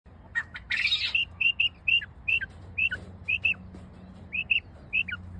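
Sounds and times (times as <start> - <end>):
quail calling with short clear whistled notes in Orotina: 0.3 - 3.6, 4.3 - 5.2.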